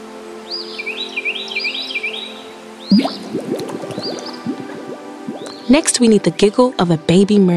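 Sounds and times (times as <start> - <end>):
birds singing high whistled chirps: 0.4 - 5.9
bubbling dripping water: 2.9 - 6.5
speech: 5.7 - 7.5.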